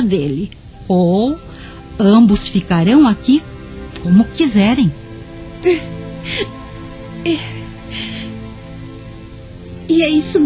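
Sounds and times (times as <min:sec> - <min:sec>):
speech: 0:00.0 - 0:05.0, 0:05.6 - 0:06.6, 0:07.2 - 0:07.5, 0:09.9 - 0:10.4
faint steady hum: 0:00.0 - 0:10.4
woman crying: 0:05.6 - 0:08.4.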